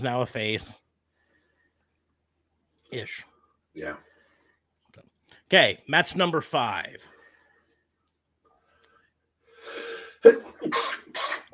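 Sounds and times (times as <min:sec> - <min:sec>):
speech: 0:00.0 - 0:00.8, 0:02.9 - 0:04.1, 0:05.0 - 0:07.1, 0:09.7 - 0:11.4
rough noisy breathing after a sneeze: 0:01.0 - 0:02.1, 0:03.3 - 0:05.5, 0:07.0 - 0:10.3
person sneezing: 0:09.7 - 0:11.5.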